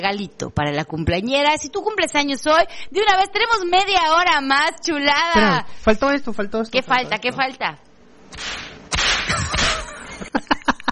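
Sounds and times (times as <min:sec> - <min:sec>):
speech: 0:00.0 - 0:08.7
whip sound effect whooshing swings: 0:08.4 - 0:09.8.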